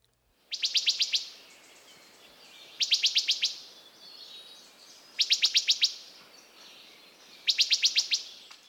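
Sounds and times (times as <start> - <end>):
wood thrush call notes: 0.5 - 1.5, 2.7 - 3.8, 5.2 - 6.1, 7.4 - 8.4.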